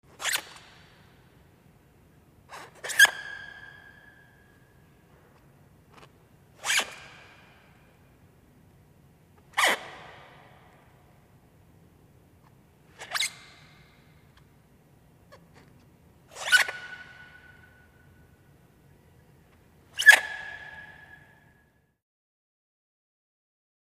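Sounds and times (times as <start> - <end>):
tennis shoes squeaking on a racquetball court: 0.1 - 1.0, 2.5 - 4.4, 6.0 - 7.6, 9.5 - 10.0, 12.9 - 14.0, 15.3 - 17.8, 19.9 - 21.4.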